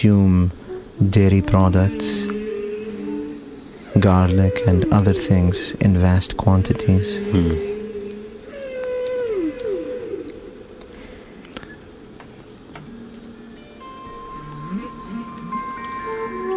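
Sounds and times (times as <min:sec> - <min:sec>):
speech: 0:00.0 - 0:02.2, 0:03.9 - 0:07.7
thin sustained discordant flute tones: 0:00.0 - 0:11.1, 0:13.0 - 0:16.5
long sweeping whale calls: 0:00.6 - 0:10.6, 0:14.4 - 0:16.5.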